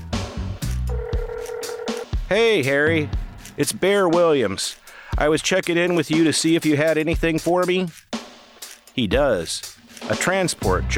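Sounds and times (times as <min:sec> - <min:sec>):
electronic keypad tones of a burner phone being dialed: 0:00.9 - 0:02.0
speech: 0:02.3 - 0:08.0, 0:09.0 - 0:10.9.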